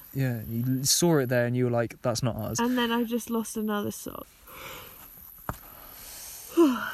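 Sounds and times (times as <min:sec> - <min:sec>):
speech: 0:00.2 - 0:04.8
quiet breathy noise: 0:04.2 - 0:06.9
person yawning: 0:06.5 - 0:06.9.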